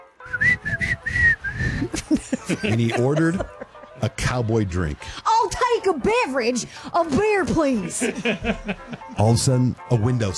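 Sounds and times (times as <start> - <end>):
person whistling a cowboy song: 0.2 - 2.0
laughter: 1.6 - 4.8, 7.7 - 9.3
speech: 2.5 - 10.3.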